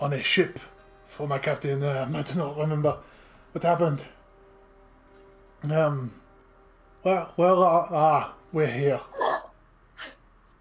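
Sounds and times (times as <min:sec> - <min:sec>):
speech: 0:00.0 - 0:04.2, 0:05.6 - 0:06.2, 0:07.0 - 0:09.2
person sneezing: 0:09.2 - 0:10.2.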